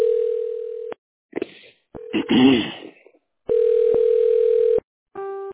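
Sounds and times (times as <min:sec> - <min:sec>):
telephone line ringing with electronic tones during call transfer: 0:00.0 - 0:00.9, 0:03.5 - 0:04.8.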